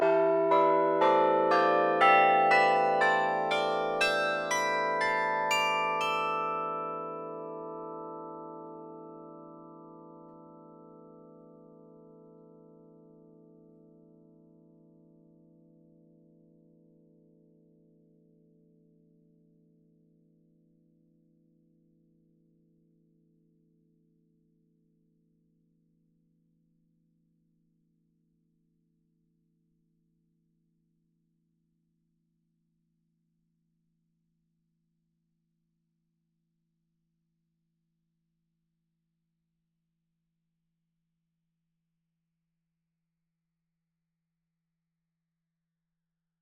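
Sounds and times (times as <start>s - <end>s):
bell melody: 0.0s - 7.9s.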